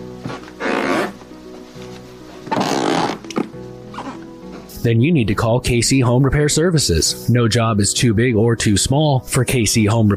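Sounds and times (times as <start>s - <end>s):
floorboards creaking and squeaking under weight: 0.2s - 4.7s
speech: 4.8s - 10.1s.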